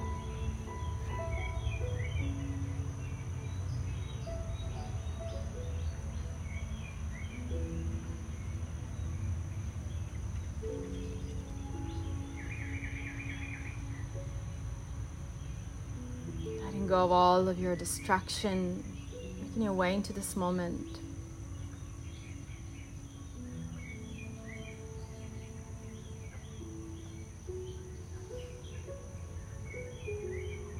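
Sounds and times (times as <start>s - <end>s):
bird chirps: 0.0s - 14.7s, 15.4s - 30.7s
soft sustained instrumental music: 0.0s - 30.7s
speech: 16.9s - 18.9s, 19.6s - 21.1s.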